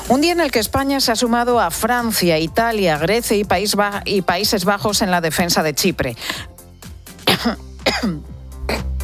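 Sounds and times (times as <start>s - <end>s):
speech: 0.1s - 6.5s, 7.4s - 8.9s
person coughing: 7.2s - 9.0s
throat clearing: 7.3s - 9.0s.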